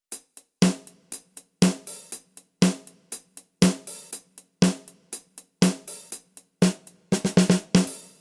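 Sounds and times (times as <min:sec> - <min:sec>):
snare drum: 0:00.1 - 0:08.1.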